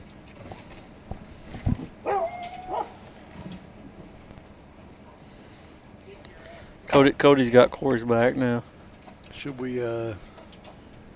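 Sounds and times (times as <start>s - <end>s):
hunting dogs barking and baying outdoors: 2.0s - 3.1s
speech: 7.0s - 8.7s, 9.4s - 10.3s.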